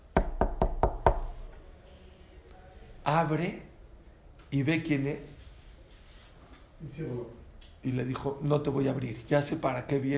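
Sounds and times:
firm knocks on a wooden door: 0.1 - 1.3
speech: 3.1 - 3.7, 4.5 - 5.4, 6.8 - 10.1.

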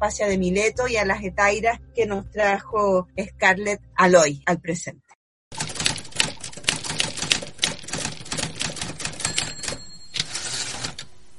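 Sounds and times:
speech: 0.0 - 5.1
rapid typewriter keystrokes clattering: 5.6 - 11.1.

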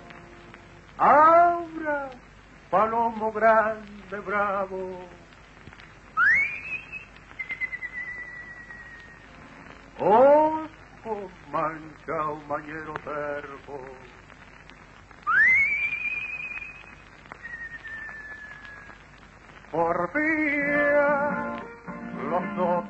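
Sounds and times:
soft hissy old-recording background: 0.0 - 22.8
speech: 1.0 - 1.2, 2.7 - 5.2, 10.0 - 10.4, 11.0 - 14.2, 19.7 - 21.6, 22.2 - 22.8
person whistling in a recorded tango: 6.2 - 9.2, 15.3 - 18.9.

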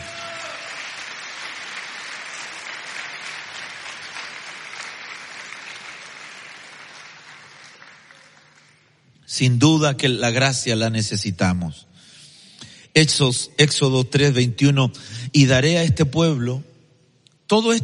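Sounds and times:
congregation applauding: 0.0 - 9.0
speech: 9.3 - 11.9, 13.0 - 16.7, 17.5 - 17.8.

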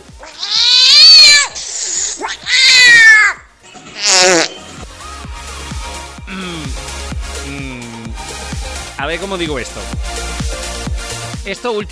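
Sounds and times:
cat meowing in drawn-out wavering yowls: 0.2 - 4.5
speech: 9.1 - 10.2, 11.4 - 11.9.

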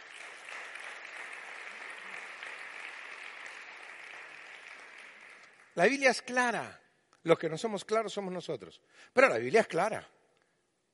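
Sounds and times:
crowd applauding: 0.0 - 6.2
speech: 5.8 - 10.2.

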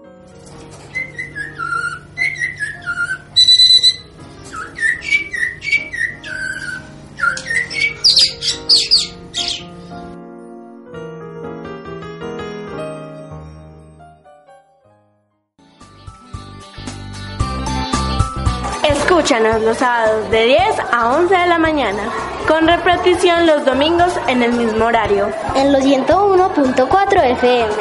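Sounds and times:
music: 0.0 - 27.7
blackbird singing in a tree: 0.9 - 9.9
speech: 19.3 - 27.7.

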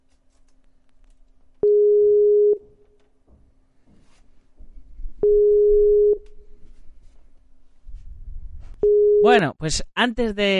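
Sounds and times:
telephone call tones for an incoming call: 1.6 - 2.6, 5.2 - 6.2, 8.8 - 9.4
speech: 9.3 - 10.5.

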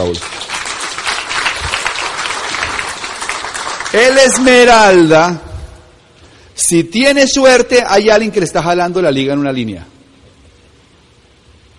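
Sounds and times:
speech: 0.0 - 0.3, 3.9 - 5.5, 6.6 - 9.9
audience applause: 0.0 - 4.6.

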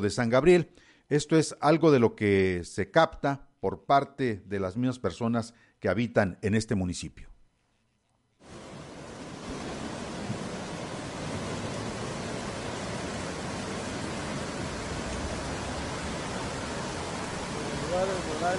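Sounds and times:
speech: 0.0 - 7.3
rushing water of a swollen river: 8.4 - 18.5.

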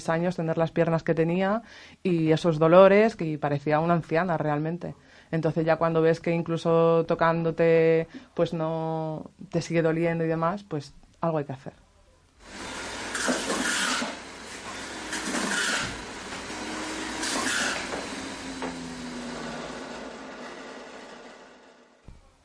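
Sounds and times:
speech: 0.0 - 11.8
electric blender whirring: 12.4 - 22.0.

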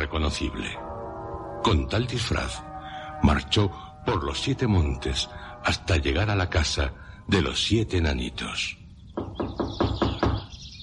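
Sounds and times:
speech: 0.1 - 0.9, 1.6 - 8.8
faint high bird chirping: 6.8 - 10.8
firm knocking on a wooden door: 9.2 - 10.5.

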